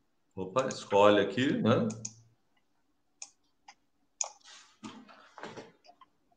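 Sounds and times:
speech: 0.4 - 2.2
computer mouse clicks: 1.8 - 4.4.

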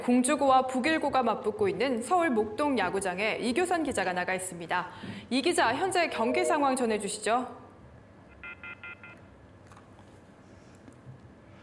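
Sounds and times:
speech: 0.0 - 7.6
low continuous phone line hum: 0.0 - 11.6
telephone dialing tones during call connection: 8.4 - 9.2.

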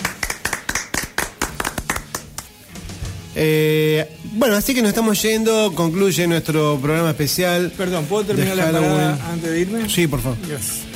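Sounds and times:
small group applauding: 0.0 - 2.6
speech: 3.4 - 10.9.

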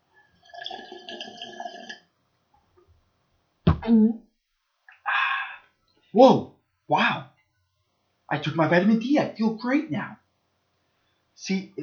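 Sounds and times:
person drinking water from a glass: 0.4 - 2.1
speech: 3.9 - 4.3, 6.2 - 7.3, 8.3 - 10.2, 11.4 - 11.8
short breathy exhale: 5.1 - 5.7.

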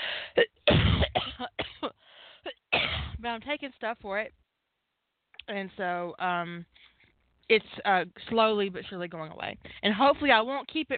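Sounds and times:
wet chesty coughing with mucus: 0.4 - 1.9, 2.5 - 3.2
speech: 3.3 - 4.4, 5.5 - 6.9, 7.5 - 10.9.

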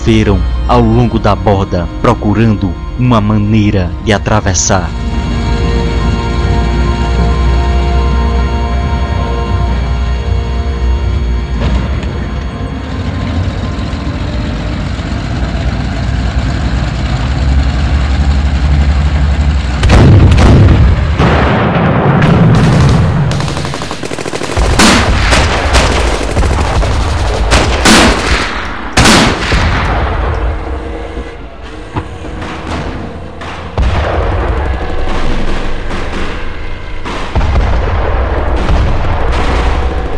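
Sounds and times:
speech: 0.0 - 5.0
constant rumbling tank engine drone: 0.0 - 40.1
tank cannon shots booming: 19.8 - 40.1
machine-gun bursts: 22.7 - 28.4.

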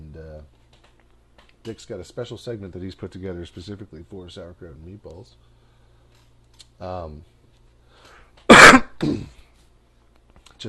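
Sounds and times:
quiet hum: 0.0 - 10.6
speech: 1.6 - 5.5, 6.8 - 7.3
harsh cough: 8.5 - 9.4
voiced throat clearing: 8.5 - 9.4.

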